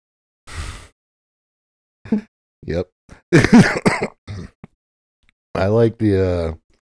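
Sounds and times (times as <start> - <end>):
speech: 2.1 - 4.1, 5.6 - 6.6
harsh coughing: 3.4 - 4.7
throat clearing: 3.4 - 4.7.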